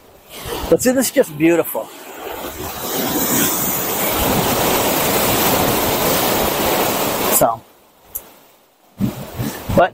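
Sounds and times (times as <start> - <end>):
ocean waves breaking as the tide comes in: 0.0 - 9.9
speech: 0.7 - 2.0, 9.8 - 9.9
wind buffeting the microphone: 2.1 - 7.2, 9.0 - 9.9.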